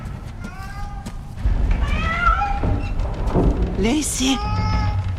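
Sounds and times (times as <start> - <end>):
cat meowing with drawn-out rising and falling cries: 0.4 - 1.2, 1.8 - 2.9, 4.2 - 5.0
speech: 3.4 - 4.6.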